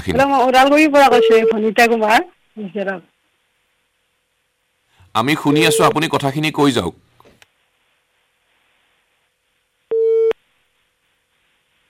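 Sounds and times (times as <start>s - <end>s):
speech: 0.0s - 3.1s, 5.2s - 7.1s
phone line beep after a call is disconnected: 1.1s - 1.6s, 5.5s - 6.0s, 9.9s - 10.4s.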